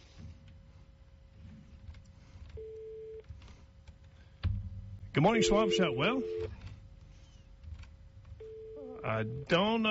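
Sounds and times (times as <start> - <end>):
steady hum-like telephone line tone: 2.5 - 3.3, 5.2 - 6.7, 8.4 - 9.9
speech: 5.2 - 6.6, 9.1 - 9.9.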